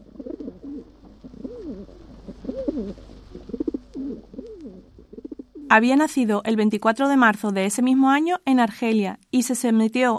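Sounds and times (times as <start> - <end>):
pigeon cooing: 0.0 - 5.8
faint hiss: 0.0 - 10.1
speech: 5.7 - 10.1.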